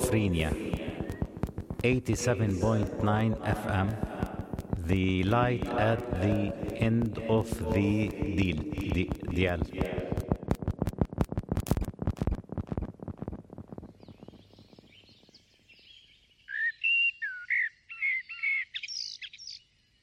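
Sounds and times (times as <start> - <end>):
rapid rhythmic thumping pulses: 0.0 - 15.4
speech: 0.1 - 0.8, 1.8 - 4.1, 4.9 - 9.9
blackbird singing fluty warbling phrases: 14.0 - 19.7.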